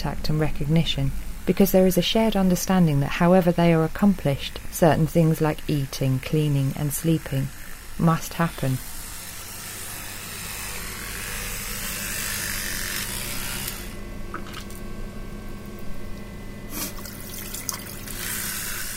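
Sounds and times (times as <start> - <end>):
speech: 0.0 - 8.9
tap water streaming steadily into a sink: 16.9 - 18.2.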